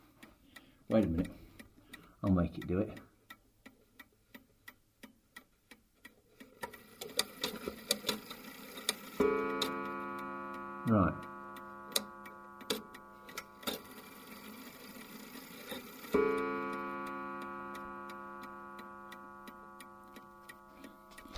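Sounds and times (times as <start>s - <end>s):
clock ticking: 0.0s - 21.3s
speech: 0.9s - 1.4s, 2.2s - 3.1s
single resonant clock strike: 9.0s - 21.3s.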